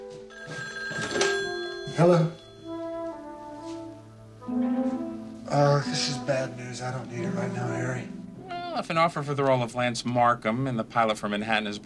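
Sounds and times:
telephone bell ringing: 0:00.0 - 0:03.2
speech: 0:02.0 - 0:02.4, 0:05.8 - 0:08.2, 0:08.8 - 0:11.8.

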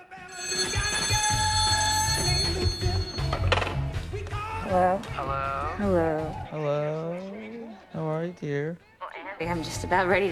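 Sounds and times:
telephone bell ringing: 0:00.0 - 0:04.8
speech: 0:04.7 - 0:07.4, 0:08.0 - 0:10.3.

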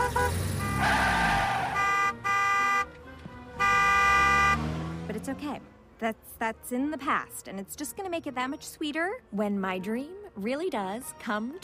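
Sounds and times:
braking cars screeching: 0:00.0 - 0:01.9
loud car horns honking: 0:00.0 - 0:05.1
steady road noise: 0:00.0 - 0:08.4
speech: 0:05.3 - 0:11.6.

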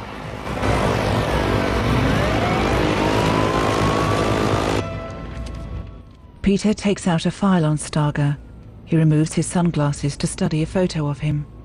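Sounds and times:
convoy of cars setting off: 0:00.0 - 0:04.8
speech: 0:06.5 - 0:11.6.

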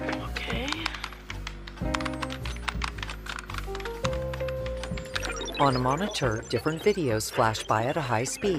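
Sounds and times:
typing on a computer keyboard: 0:00.1 - 0:05.4
speech: 0:05.6 - 0:08.5.

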